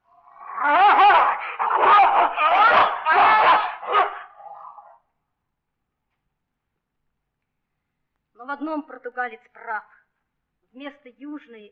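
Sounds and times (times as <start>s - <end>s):
dog snarling and growling while attacking a man: 0.2s - 5.0s
speech: 8.6s - 10.0s, 10.8s - 11.7s.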